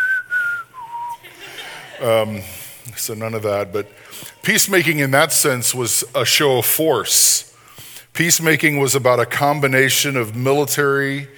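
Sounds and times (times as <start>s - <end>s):
person whistling a two-note phrase: 0.0s - 1.2s
soft hiss: 0.0s - 11.3s
laughter: 1.2s - 2.6s
speech: 2.0s - 7.5s, 8.2s - 11.3s.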